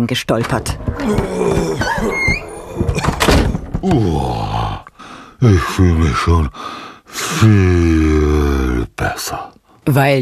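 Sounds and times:
speech: 0.0 - 2.4, 3.8 - 4.5, 5.4 - 10.2
door creaking open: 0.3 - 4.0.

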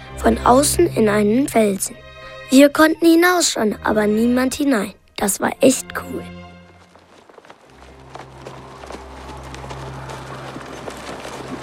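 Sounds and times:
speech: 0.2 - 6.4
horses' hooves clip-clopping: 6.4 - 11.6.

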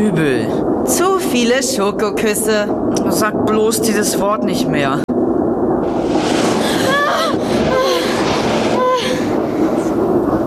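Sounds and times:
speech: 0.0 - 5.1
ghost-train style dark ride train rattling on tracks at an amusement park: 5.8 - 10.4
high squealing tones: 5.9 - 9.9.

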